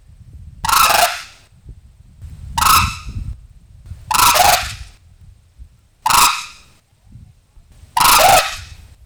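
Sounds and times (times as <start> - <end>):
white-naped crane pair alarm calls: 0.7 - 1.4, 2.6 - 3.2, 4.0 - 4.9, 6.1 - 6.7, 7.8 - 8.9.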